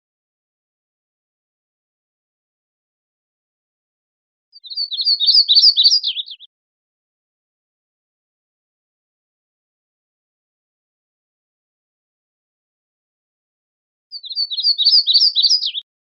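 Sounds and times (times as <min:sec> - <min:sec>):
yellow-rumped warbler chipping notes: 0:04.6 - 0:06.4, 0:14.2 - 0:15.8.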